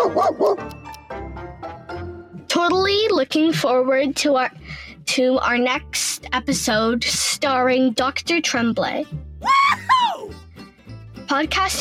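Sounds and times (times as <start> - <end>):
Golden Retriever Bernese Mountain mix barking: 0.0 - 0.7
speech: 0.2 - 0.6, 2.6 - 9.6, 11.3 - 11.7.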